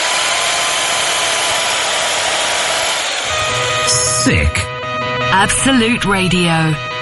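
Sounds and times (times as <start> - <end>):
power drill whirring: 0.0 - 4.2
speech: 4.2 - 4.6, 5.3 - 6.9.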